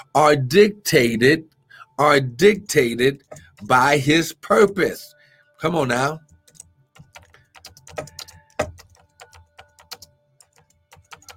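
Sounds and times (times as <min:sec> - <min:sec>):
speech: 0:00.1 - 0:06.3
typing on a phone or keyboard: 0:03.2 - 0:03.7, 0:06.2 - 0:11.3.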